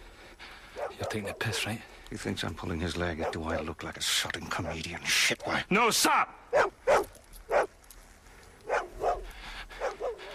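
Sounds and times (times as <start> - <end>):
dog barking: 0.8 - 1.7, 3.2 - 3.6, 6.5 - 7.7, 8.7 - 10.3
speech: 1.0 - 6.8.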